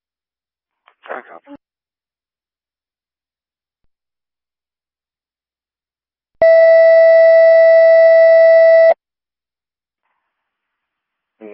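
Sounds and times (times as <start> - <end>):
speech: 1.2 - 1.6
steady electronic radio paging test tone: 6.4 - 9.0.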